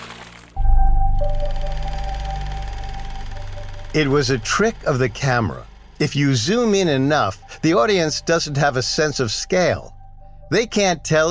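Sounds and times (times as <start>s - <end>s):
small submarine plunging into a tank of water with a loud splash: 0.0s - 0.6s
pulsing mechanical hum: 0.6s - 11.2s
speech: 3.9s - 11.2s.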